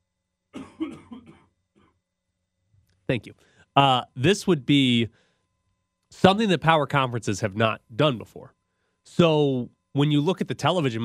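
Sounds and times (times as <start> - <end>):
person coughing: 0.6 - 1.6
speech: 3.1 - 5.2, 6.1 - 11.0.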